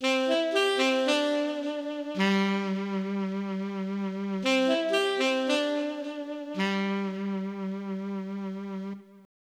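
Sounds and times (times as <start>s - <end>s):
Korg i3 saxophone sound: 0.0s - 9.3s.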